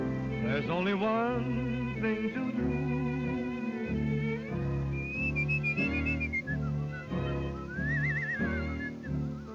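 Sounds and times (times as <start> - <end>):
instrumental backing with a bouncy rhythm: 0.0 - 9.5
bright whistled melody with sliding wavering notes: 0.4 - 1.5, 4.8 - 9.5
speech: 0.5 - 2.9.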